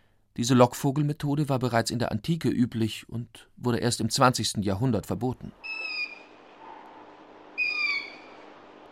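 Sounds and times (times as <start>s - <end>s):
speech: 0.4s - 5.9s
shrill wavering owl screeches: 5.6s - 8.6s.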